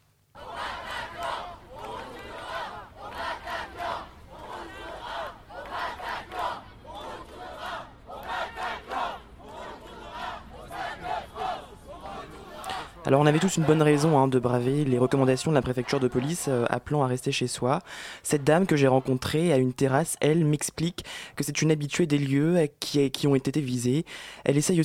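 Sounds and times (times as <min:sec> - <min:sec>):
large crowd chanting outdoors in a public square: 0:00.3 - 0:16.8, 0:18.2 - 0:19.6
speech: 0:13.1 - 0:24.8.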